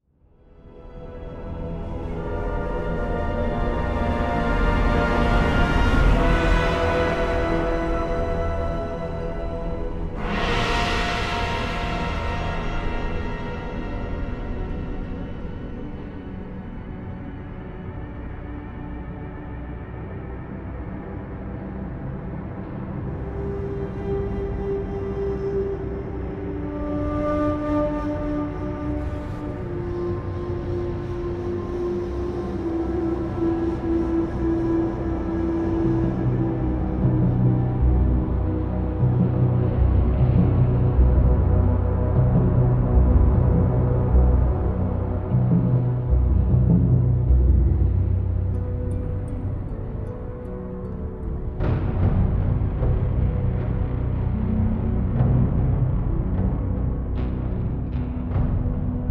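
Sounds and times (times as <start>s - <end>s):
ambient music: 0.0s - 59.1s.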